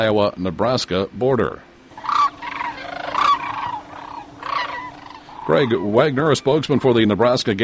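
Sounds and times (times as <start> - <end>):
speech: 0.0 - 1.7, 5.5 - 7.6
migrating sandhill cranes calling in spring in the Missouri River Valley: 1.9 - 7.1.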